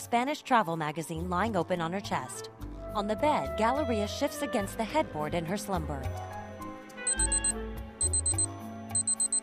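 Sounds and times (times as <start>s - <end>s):
speech: 0.0s - 6.3s
electronic alarm clock beeping: 7.1s - 9.4s.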